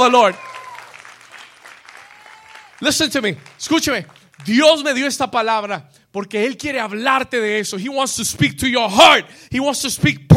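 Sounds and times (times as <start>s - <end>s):
speech: 0.0s - 0.5s, 2.8s - 10.3s
audience applauding: 0.0s - 4.9s.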